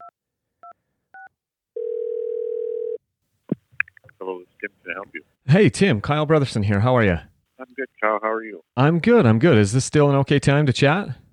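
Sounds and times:
telephone dial tone: 0:01.2 - 0:03.0
speech: 0:04.2 - 0:11.2.

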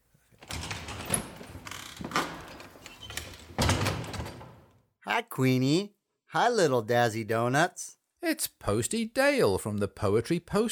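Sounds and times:
door latch rattling as someone arrives: 0:00.4 - 0:04.7
speech: 0:05.1 - 0:10.7.

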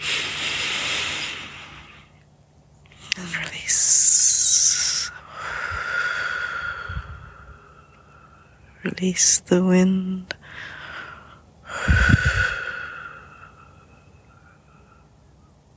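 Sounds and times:
slow deep breathing in and out: 0:00.0 - 0:02.2, 0:05.1 - 0:08.8, 0:10.4 - 0:15.2
speech: 0:08.9 - 0:10.4.

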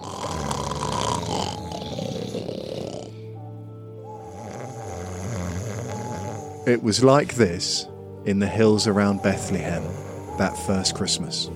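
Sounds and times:
person imitating snoring: 0:00.0 - 0:03.2, 0:04.2 - 0:06.7, 0:08.9 - 0:10.6
speech: 0:06.7 - 0:11.5.

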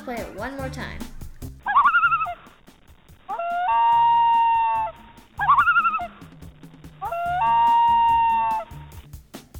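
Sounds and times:
speech: 0:00.0 - 0:01.1
common loon calling: 0:01.6 - 0:09.0.

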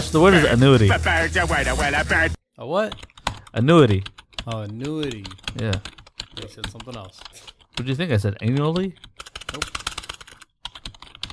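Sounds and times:
speech: 0:00.1 - 0:09.9
typing on a computer keyboard: 0:02.9 - 0:11.3.

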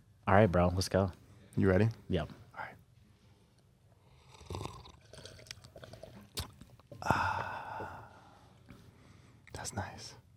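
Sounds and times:
speech: 0:00.3 - 0:02.8
slurping tea: 0:04.1 - 0:06.8.

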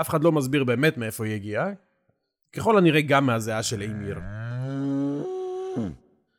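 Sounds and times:
speech: 0:00.0 - 0:01.9, 0:02.5 - 0:04.4, 0:05.8 - 0:06.0
cow mooing: 0:03.9 - 0:06.0.

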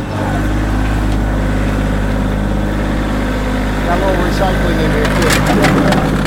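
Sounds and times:
tractor engine idling: 0:00.0 - 0:06.2
apples loaded into a tractor bucket for cider presses: 0:03.8 - 0:06.2.

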